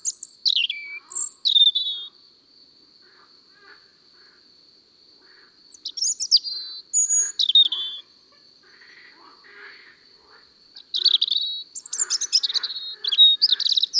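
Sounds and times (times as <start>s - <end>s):
European robin singing high-pitched warbling song: 0.0s - 2.1s, 5.7s - 8.0s, 10.8s - 13.9s.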